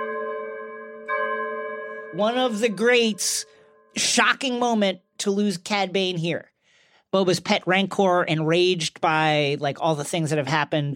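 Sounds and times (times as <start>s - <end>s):
church bell tolling: 0.0s - 4.7s
speech: 2.1s - 6.5s, 7.1s - 10.9s.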